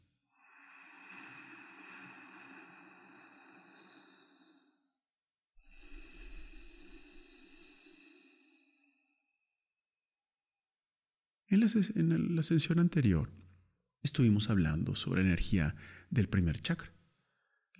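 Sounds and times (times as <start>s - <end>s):
slow deep inhale and exhale: 0.0s - 9.5s, 15.8s - 16.1s
speech: 11.5s - 17.0s.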